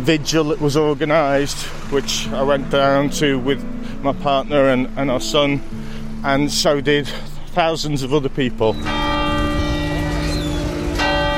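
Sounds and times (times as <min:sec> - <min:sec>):
speech: 0:00.0 - 0:09.1
church bells ringing over a packed square during a vigil: 0:08.7 - 0:11.3.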